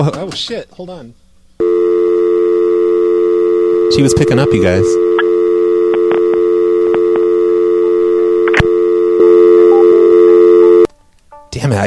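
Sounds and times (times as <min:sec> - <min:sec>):
speech: 0:00.0 - 0:01.2, 0:03.9 - 0:05.1, 0:11.6 - 0:11.8
electronic telephone line tone during a phone call: 0:01.6 - 0:10.9.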